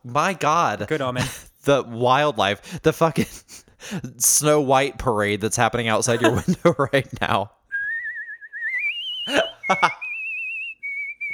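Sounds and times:
speech: 0.0s - 7.6s, 9.3s - 10.0s
person laughing: 6.1s - 7.4s, 9.2s - 10.3s
person whistling a cheerful tune: 7.7s - 11.3s.

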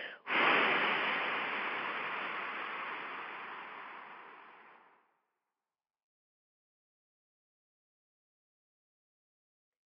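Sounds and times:
long forceful exhale during a guided breathing exercise: 0.0s - 5.0s.

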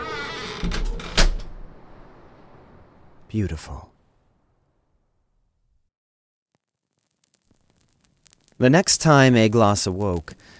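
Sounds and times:
door swinging and shutting with a solid thud: 0.0s - 1.8s
low rumble: 0.0s - 5.6s
speech: 3.3s - 4.0s, 8.6s - 10.5s.

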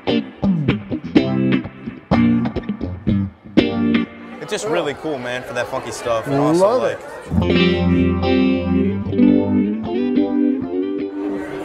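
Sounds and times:
electric guitar played through a Keeley Echoes pedal set to slapback echo: 0.0s - 4.4s, 7.3s - 11.6s
speech: 4.5s - 8.8s.

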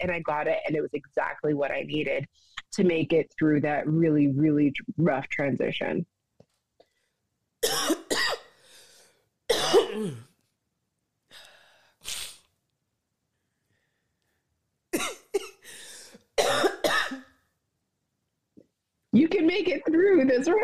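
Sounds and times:
speech: 0.0s - 6.1s, 9.7s - 10.3s, 19.1s - 20.6s
harsh coughing fit: 7.6s - 8.5s, 9.5s - 10.3s, 15.0s - 15.7s, 16.4s - 17.3s
raspy breath: 8.5s - 9.2s, 15.6s - 16.3s.

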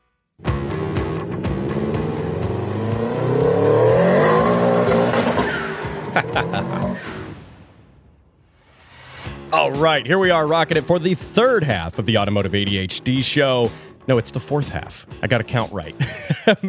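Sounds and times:
car engine revving through throttle pulls: 0.4s - 7.4s
laughter: 5.1s - 7.0s, 15.9s - 16.6s
speech: 9.8s - 16.6s.

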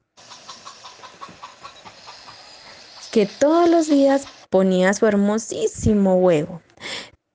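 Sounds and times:
hen clucking: 0.0s - 4.5s
constant hiss of noise: 0.0s - 7.0s
speech: 3.1s - 6.7s.

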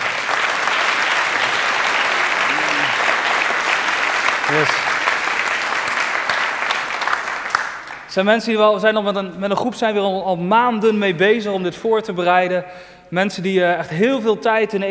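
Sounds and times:
sustained applause from a sizable crowd: 0.0s - 8.1s
speech: 4.5s - 4.9s, 8.2s - 14.8s.

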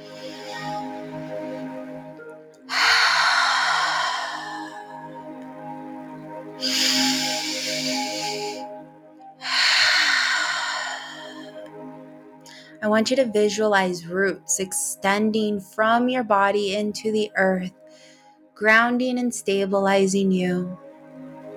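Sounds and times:
deep breaths in through the nose and out through the mouth: 0.0s - 2.0s, 2.7s - 5.3s, 6.6s - 8.8s, 9.4s - 11.8s, 17.8s - 18.4s
sustained steady tonal music bed for a full moon meditation: 0.0s - 21.5s
speech: 12.8s - 17.8s, 18.6s - 20.8s.

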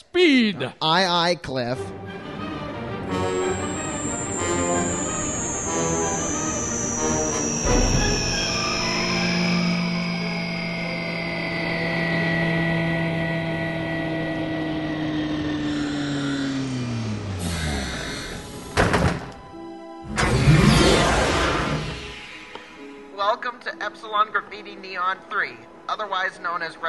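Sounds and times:
speech: 0.1s - 2.2s, 24.6s - 26.8s
spaceship engine whine flying toward a landing strip: 2.0s - 23.2s.

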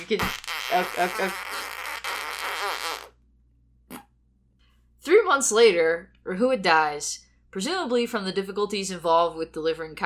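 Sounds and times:
speech: 0.0s - 1.7s, 5.3s - 10.0s
voice imitating a fart with the mouth: 0.0s - 3.2s, 3.8s - 4.2s.

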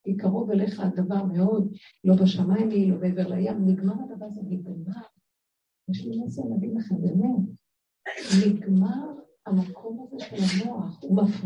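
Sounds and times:
speech: 0.2s - 5.1s, 5.9s - 11.4s
person sneezing: 8.1s - 8.5s, 10.4s - 10.7s.

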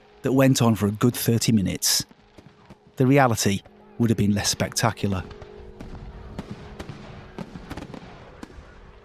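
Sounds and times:
speech: 0.2s - 2.2s, 3.0s - 5.4s
fireworks display cracking and popping beside a bonfire on a cold night: 2.0s - 3.6s, 5.2s - 9.0s.

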